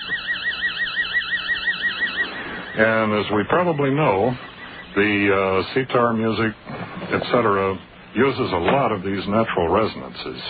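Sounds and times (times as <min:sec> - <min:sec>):
amplified modulated brainwave signal in theta rhythm, pulsing high-pitched electronic tone: 0:00.0 - 0:05.7
speech: 0:02.8 - 0:10.4.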